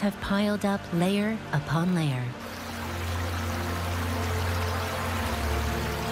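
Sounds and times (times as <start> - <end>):
speech: 0.0 - 2.4
water of the Panguchun stream rushing: 2.3 - 6.1.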